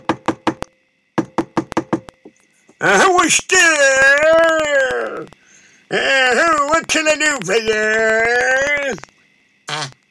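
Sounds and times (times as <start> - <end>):
firm knocking on a door: 0.0 - 0.6, 1.2 - 2.2
speech: 2.8 - 9.1.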